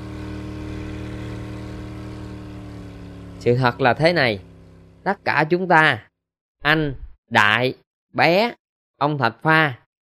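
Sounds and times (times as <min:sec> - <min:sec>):
motor engine idling at low throttle: 0:00.0 - 0:05.2
speech: 0:03.4 - 0:09.8.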